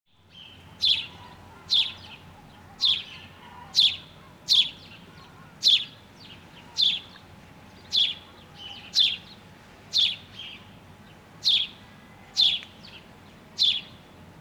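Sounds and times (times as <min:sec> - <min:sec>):
soft background hum: 0:00.1 - 0:14.3
house sparrow Passer domesticus chirping: 0:00.3 - 0:07.1, 0:07.7 - 0:09.3, 0:09.9 - 0:10.6, 0:13.6 - 0:14.3.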